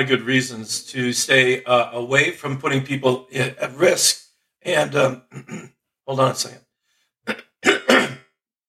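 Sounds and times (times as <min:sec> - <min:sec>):
speech: 0:00.0 - 0:06.6, 0:07.2 - 0:07.8
throat clearing: 0:05.2 - 0:05.8, 0:07.3 - 0:08.3
person coughing: 0:05.3 - 0:05.7, 0:07.3 - 0:08.3.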